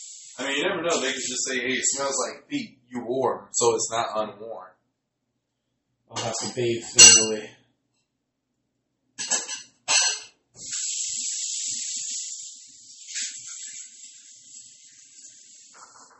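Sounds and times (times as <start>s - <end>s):
speech: 0.4s - 4.8s, 6.1s - 7.6s
dishes being washed at a sink: 6.2s - 7.4s, 9.2s - 16.1s
dishes clattering at a sink: 6.2s - 7.4s, 9.2s - 10.3s
water running from a tap: 10.6s - 16.1s.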